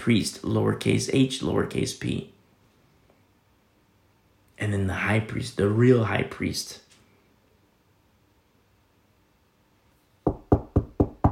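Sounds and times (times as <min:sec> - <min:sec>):
speech: 0:00.0 - 0:02.4, 0:04.6 - 0:06.8
firm solid knocking: 0:10.3 - 0:11.3.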